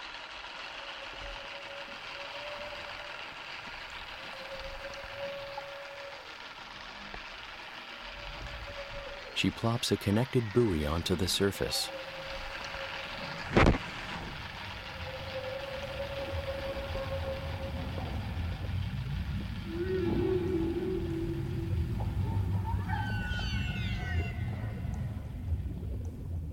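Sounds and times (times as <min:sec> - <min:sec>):
massive whales calling near the surface: 0:04.2 - 0:06.3, 0:08.0 - 0:09.4, 0:10.4 - 0:26.5
speech: 0:09.4 - 0:12.0
low rumble: 0:12.0 - 0:26.5.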